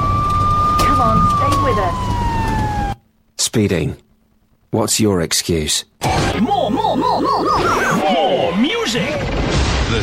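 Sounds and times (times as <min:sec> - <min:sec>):
police car siren: 0:00.0 - 0:03.0
speech: 0:01.0 - 0:02.6, 0:03.6 - 0:04.0, 0:04.7 - 0:10.0.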